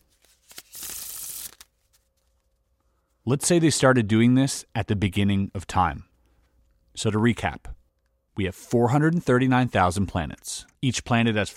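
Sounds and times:
deck of playing cards being riffle-shuffled: 0.0 - 2.6
soft clicks of deck of playing cards settling: 0.3 - 1.7
speech: 3.3 - 6.1, 7.0 - 7.8, 8.4 - 11.5.

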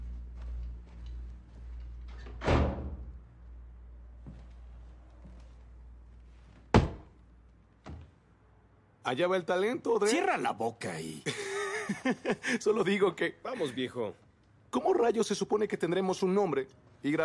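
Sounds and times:
door banging shut as someone leaves: 2.2 - 3.1, 6.7 - 7.1
speech: 9.1 - 17.2
laughter: 11.2 - 12.8.

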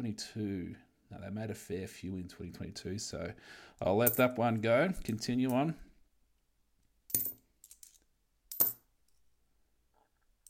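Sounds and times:
speech: 0.0 - 5.9
dollar coins clinking while being set down and sorted: 7.1 - 8.8.

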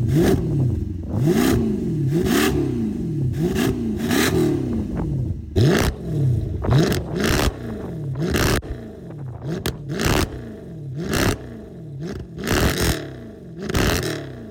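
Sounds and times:
car engine revving through valved aftermarket exhaust with stock headers: 0.0 - 14.5
exhaust crackles and pops: 5.6 - 11.4.

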